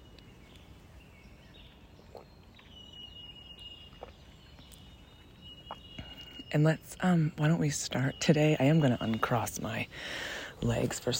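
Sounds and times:
birds chirping and trilling outdoors: 0.0s - 11.1s
speech: 6.5s - 11.1s.

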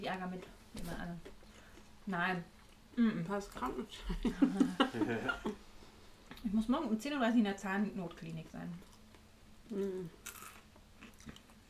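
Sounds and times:
speech: 0.0s - 1.4s, 2.0s - 5.7s, 6.4s - 8.9s, 9.7s - 10.4s
laughter: 4.1s - 5.6s
chewing dried roasted edamame: 8.8s - 11.6s.

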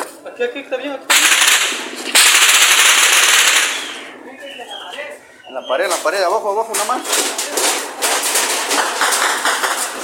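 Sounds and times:
speech: 0.4s - 2.6s, 5.5s - 7.7s
dense rapid burst of crackling gunfire: 1.1s - 4.1s, 7.1s - 10.0s.

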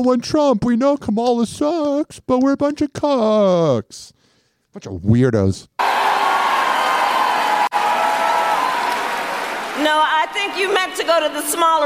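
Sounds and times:
speech: 0.0s - 5.8s, 10.0s - 11.8s
large audience clapping: 5.8s - 10.9s.

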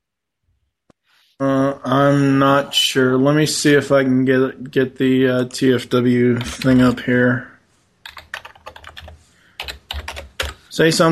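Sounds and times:
speech: 1.4s - 7.5s, 10.8s - 11.1s
typing on a computer keyboard: 8.0s - 10.6s.

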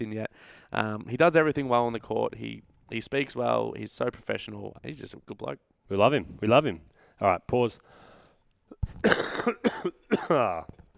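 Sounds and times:
speech: 0.0s - 8.0s, 8.7s - 10.8s
drawn-out rasping throat clear: 8.7s - 10.7s
person coughing harshly: 8.7s - 10.7s.

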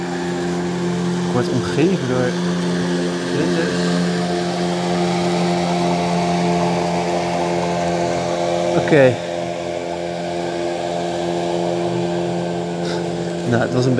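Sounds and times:
tour boat engine droning: 0.0s - 13.9s
speech: 1.4s - 2.6s, 3.3s - 4.0s, 8.8s - 9.2s, 13.5s - 13.9s.

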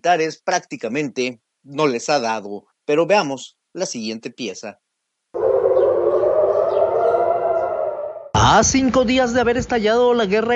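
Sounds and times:
speech: 0.0s - 4.8s, 8.4s - 10.5s
air raid sirens wailing: 5.4s - 8.4s.

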